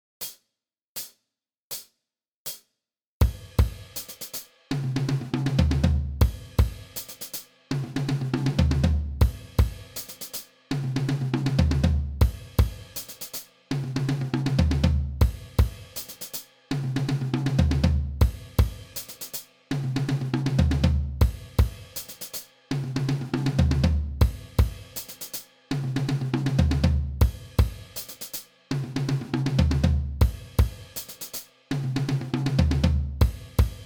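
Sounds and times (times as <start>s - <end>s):
drum kit: 3.2s - 33.8s.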